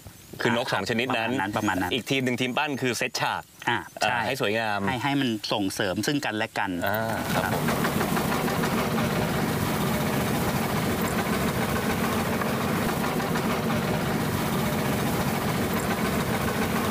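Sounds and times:
speech: 0.4s - 7.9s
boat engine idling: 6.8s - 16.8s.

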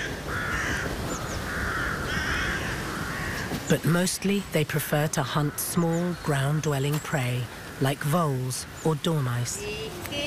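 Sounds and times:
hooded crows cawing across a city in autumn: 0.0s - 3.7s, 5.2s - 5.9s, 7.5s - 8.0s
steady hum of open air: 0.0s - 10.2s
speech: 3.7s - 10.2s.

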